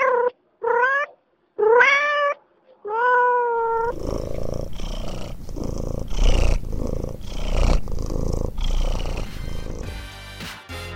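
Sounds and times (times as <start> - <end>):
cat meowing: 0.0 - 4.0
cat purring: 3.6 - 9.9.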